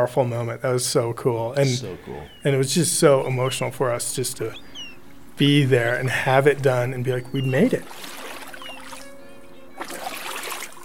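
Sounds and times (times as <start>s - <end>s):
speech: 0.0s - 4.7s, 5.4s - 8.2s
small boat paddled through water: 7.4s - 9.2s, 9.8s - 10.8s.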